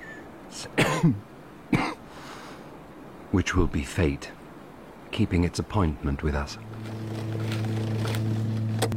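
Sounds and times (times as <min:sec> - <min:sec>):
quiet noise: 0:00.0 - 0:08.9
speech: 0:00.6 - 0:01.3, 0:03.3 - 0:04.4, 0:05.1 - 0:06.9
hoarse coughing: 0:00.8 - 0:02.0.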